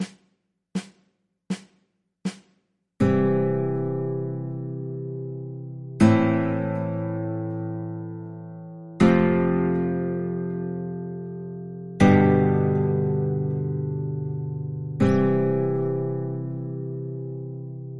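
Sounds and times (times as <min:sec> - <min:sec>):
50s chord progression: 0:03.0 - 0:17.9.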